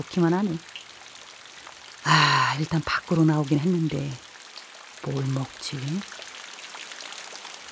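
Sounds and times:
speech: 0.0s - 0.8s, 2.0s - 4.2s, 5.0s - 6.2s
steady rain: 0.0s - 7.7s
voice murmuring: 2.1s - 4.2s.

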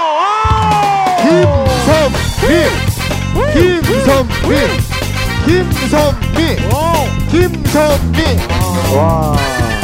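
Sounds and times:
audience cheering and whooping: 0.0s - 4.2s
speech: 3.9s - 4.8s, 5.5s - 9.7s.

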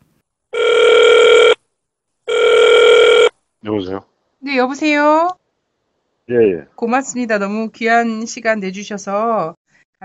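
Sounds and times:
electronic ring tones of a phone line: 0.6s - 1.6s, 2.3s - 3.3s
speech: 3.7s - 5.4s, 6.3s - 10.0s.

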